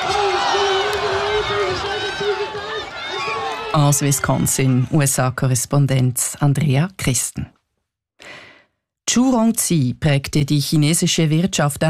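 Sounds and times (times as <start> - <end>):
crowd cheering at a pig race: 0.0 - 5.4
speech: 3.7 - 7.5, 9.2 - 11.8.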